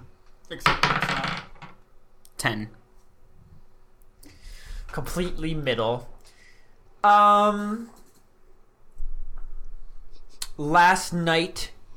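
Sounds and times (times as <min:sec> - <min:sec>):
speech: 0:00.5 - 0:01.2, 0:02.4 - 0:02.8, 0:05.0 - 0:06.1, 0:07.0 - 0:08.0, 0:10.6 - 0:11.8
twenty-sided die clacking and rattling on a hard tabletop: 0:00.6 - 0:01.8.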